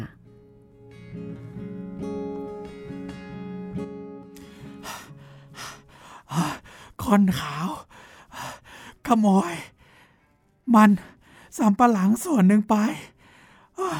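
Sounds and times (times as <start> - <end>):
person panting out of breath from running: 4.4 - 7.0, 7.8 - 9.0
speech: 7.1 - 7.8, 9.1 - 9.7, 10.7 - 13.1.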